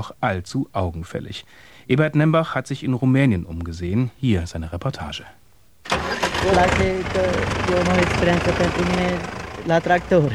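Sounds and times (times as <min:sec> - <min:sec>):
speech: 0:00.0 - 0:10.3
tractor engine running in a small village in Romania: 0:05.9 - 0:10.3.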